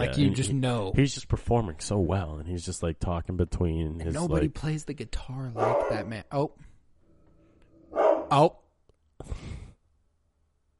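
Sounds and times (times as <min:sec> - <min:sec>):
speech: 0:00.0 - 0:06.6, 0:08.3 - 0:08.6
dog barking inside a house: 0:05.6 - 0:06.1, 0:07.9 - 0:08.4.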